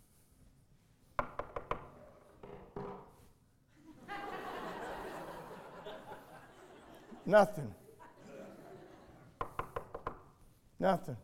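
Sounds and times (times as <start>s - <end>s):
knocking on the front door of a house: 1.2s - 3.1s, 9.4s - 10.2s
laughter: 3.8s - 9.4s
speech: 7.2s - 7.8s, 10.8s - 11.2s.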